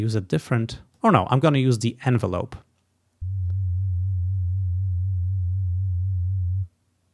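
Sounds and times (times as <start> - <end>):
speech: 0.0 - 2.7
steady pure low synthesizer sine tone: 3.2 - 6.7.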